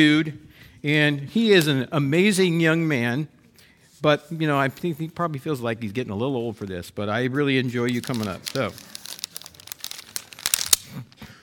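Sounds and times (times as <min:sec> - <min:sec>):
speech: 0:00.0 - 0:03.4, 0:04.0 - 0:09.0
paper being crinkled and handled: 0:07.8 - 0:11.3.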